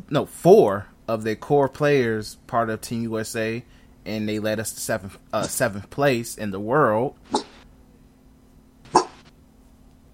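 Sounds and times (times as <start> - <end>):
faint steady hum: 0.0 - 10.1
speech: 0.1 - 7.4
dog barking: 8.9 - 9.2.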